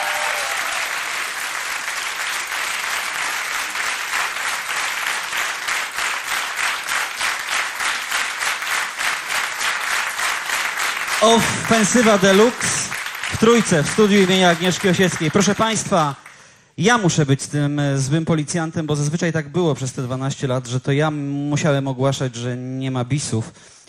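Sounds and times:
studio audience applauding: 0.0 - 16.5
speech: 11.2 - 12.8, 13.4 - 16.2, 16.8 - 23.8.

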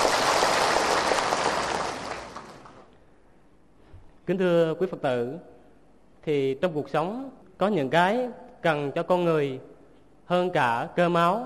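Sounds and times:
audience applause at a Buddhist dharma program: 0.0 - 2.9
speech: 4.3 - 5.5, 6.2 - 9.7, 10.3 - 11.4.

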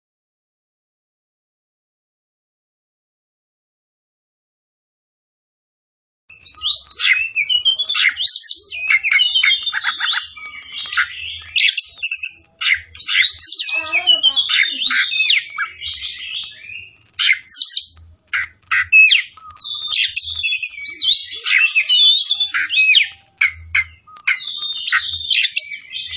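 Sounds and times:
Oriental magpie-robin singing vigorously: 6.3 - 26.1.

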